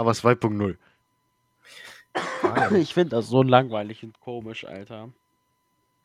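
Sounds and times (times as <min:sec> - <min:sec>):
speech: 0:00.0 - 0:00.9, 0:01.7 - 0:05.2
person coughing: 0:02.1 - 0:03.0.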